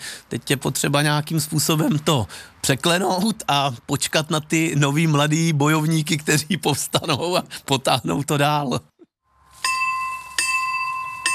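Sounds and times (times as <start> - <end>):
speech: 0.3 - 8.9
bell of an old village bell tower from 1968 striking: 9.6 - 11.3.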